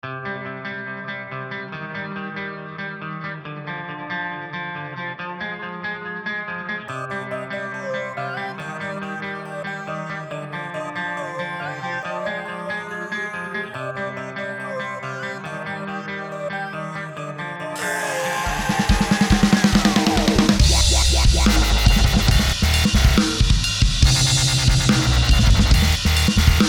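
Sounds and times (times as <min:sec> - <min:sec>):
dubstep music snippet: 0:07.0 - 0:26.6.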